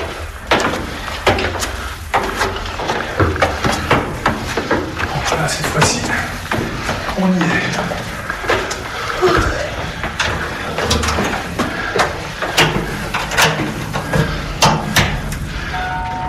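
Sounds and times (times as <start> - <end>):
heavy oak door opening in a cathedral bell tower: 0.0 - 16.2
faint voices murmuring: 5.0 - 13.0
speech: 7.2 - 7.7.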